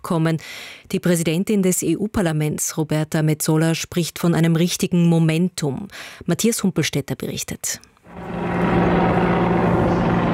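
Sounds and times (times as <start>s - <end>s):
speech: 0.0s - 8.3s
helicopter circling over Tivat: 8.1s - 10.3s.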